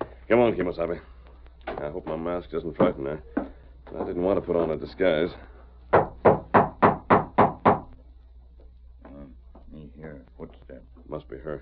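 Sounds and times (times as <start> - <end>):
speech: 0.3 - 1.1, 1.8 - 6.0
knocking on a door: 5.9 - 7.9.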